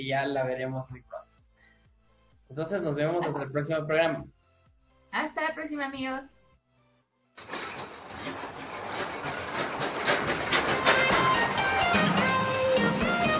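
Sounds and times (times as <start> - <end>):
speech: 0.0 - 1.1, 2.5 - 4.4, 5.1 - 6.4
train sound effect with rolling rail clatter and clickety-clack: 7.4 - 13.3.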